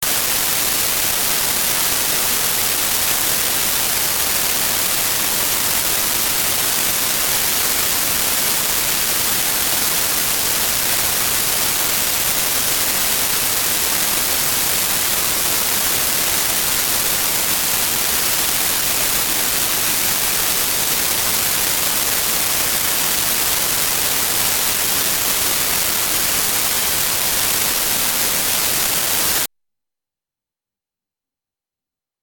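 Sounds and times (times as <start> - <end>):
white noise: 0.0 - 29.5.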